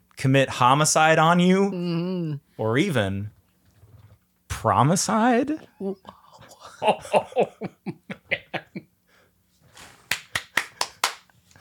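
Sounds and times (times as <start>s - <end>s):
speech: 0.2s - 3.4s, 4.6s - 6.2s, 6.8s - 8.1s
rhythmic laughter: 5.6s - 8.9s
one person clapping hands: 10.0s - 11.4s.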